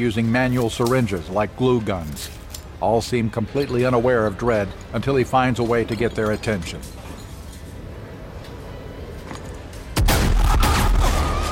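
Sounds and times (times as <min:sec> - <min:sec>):
speech: 0:00.0 - 0:07.0
gunshots fired at workers in a factory with copper distillation vats: 0:10.0 - 0:11.5
sustained heavy booming in a factory: 0:10.0 - 0:11.5.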